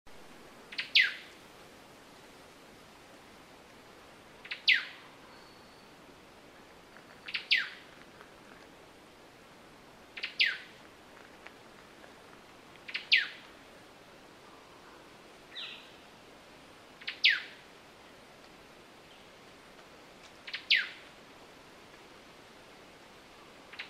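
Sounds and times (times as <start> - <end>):
Poecilodryas superciliosa white-browed robin calling: 0.7 - 1.4, 4.4 - 6.2, 7.1 - 7.9, 10.1 - 10.8, 12.8 - 13.5, 14.4 - 16.0, 17.0 - 17.6, 20.4 - 21.1, 23.3 - 23.8.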